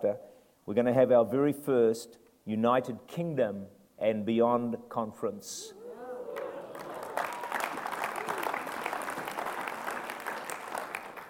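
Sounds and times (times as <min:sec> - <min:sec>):
speech: 0:00.0 - 0:05.8
large crowd applauding: 0:06.0 - 0:11.2.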